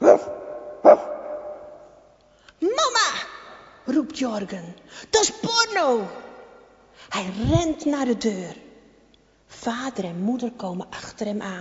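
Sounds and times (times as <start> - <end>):
dog barking at a farmhouse door: 0.0 - 1.8
speech: 4.2 - 6.3, 7.1 - 8.6, 9.6 - 11.5.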